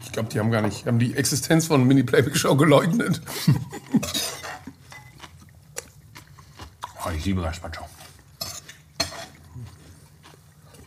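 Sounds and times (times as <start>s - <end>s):
speech: 0.2s - 4.2s, 7.1s - 8.0s
laughter: 3.2s - 4.3s
smacking eating noises: 3.2s - 10.8s
cutlery clinking against a dish: 4.0s - 5.2s, 8.4s - 9.4s.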